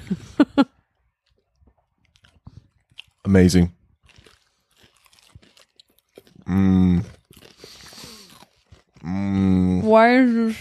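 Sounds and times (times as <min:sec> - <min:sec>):
soft chewing noises: 0:00.6 - 0:10.5
jaw clicking while chewing: 0:01.1 - 0:03.3, 0:04.0 - 0:09.6
speech: 0:03.3 - 0:03.8, 0:10.0 - 0:10.5.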